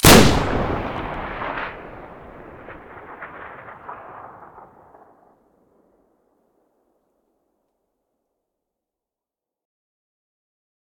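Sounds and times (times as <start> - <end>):
automatic shotgun firing: 0.0 - 5.3.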